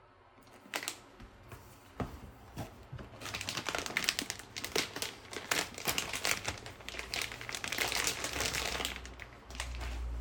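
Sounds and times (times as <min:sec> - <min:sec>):
plastic packaging of new thermal underwear being torn open and handled: 0:00.4 - 0:01.0, 0:03.1 - 0:10.1.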